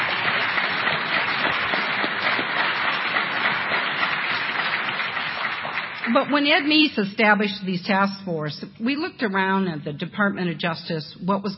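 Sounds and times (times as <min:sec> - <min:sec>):
audience applause: 0:00.0 - 0:06.3
speech: 0:06.1 - 0:11.5.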